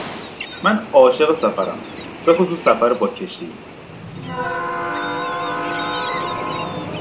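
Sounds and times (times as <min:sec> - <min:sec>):
speech: 0:00.6 - 0:03.7
train horn sound effect blast: 0:04.0 - 0:07.0.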